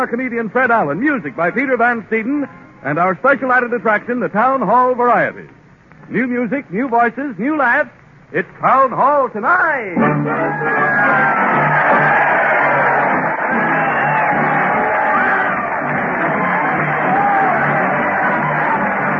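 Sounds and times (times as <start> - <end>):
speech: 0.0 - 12.2
large crowd cheering and yelling at a parade: 10.0 - 19.1.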